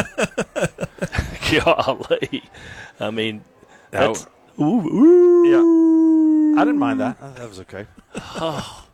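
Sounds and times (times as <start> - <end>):
laughter: 0.0 - 2.6, 7.4 - 8.9
speech: 1.5 - 8.8
wolf-like howl: 4.8 - 7.1.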